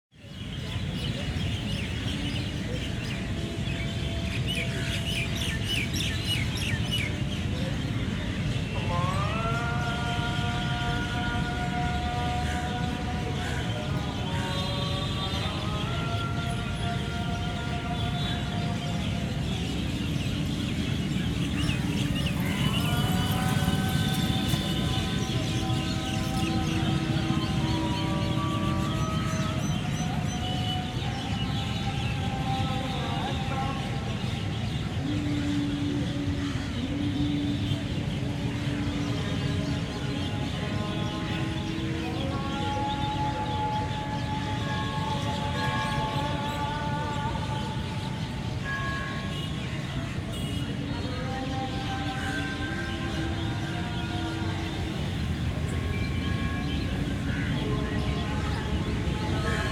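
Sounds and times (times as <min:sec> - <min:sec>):
birds in a city park in North India: 0:00.2 - 0:59.7
city traffic in North India: 0:00.2 - 0:59.7
bell of a temple in North India: 0:42.6 - 0:59.7.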